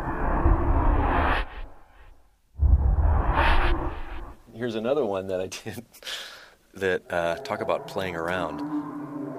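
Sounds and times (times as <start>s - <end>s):
loud airy whooshes of broadband rushing noise: 0.0s - 4.4s
speech: 4.6s - 9.0s.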